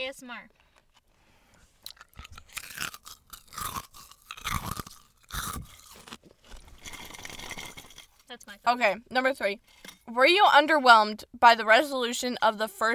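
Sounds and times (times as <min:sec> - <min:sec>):
speech: 0:00.1 - 0:00.6, 0:08.3 - 0:12.9
crunching of ice being chewed: 0:00.7 - 0:08.3.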